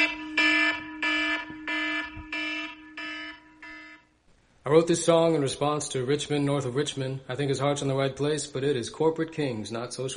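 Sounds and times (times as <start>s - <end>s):
alarm buzzer ringing: 0.0s - 4.2s
speech: 4.7s - 10.1s.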